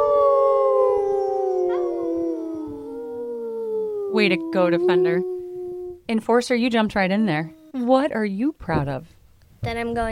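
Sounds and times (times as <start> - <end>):
group of people howling like wolves: 0.0 - 6.1
speech: 4.2 - 5.3, 6.1 - 10.1.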